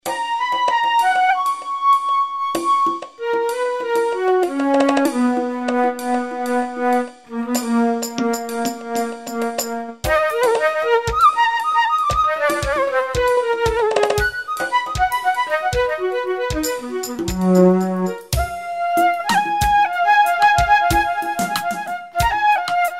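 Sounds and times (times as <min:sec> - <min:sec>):
wood flute: 0:00.0 - 0:22.9.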